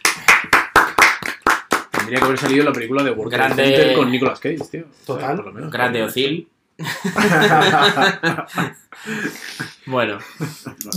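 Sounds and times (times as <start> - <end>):
hands clapping in applause: 0.0 - 3.2
speech: 2.1 - 10.9
laughter: 6.8 - 10.9.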